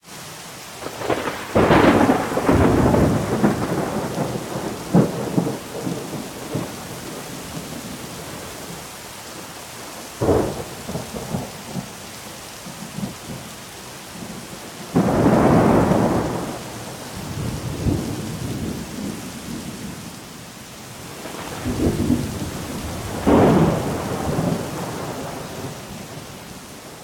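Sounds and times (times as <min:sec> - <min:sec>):
autumn rainstorm: 0:00.0 - 0:27.0.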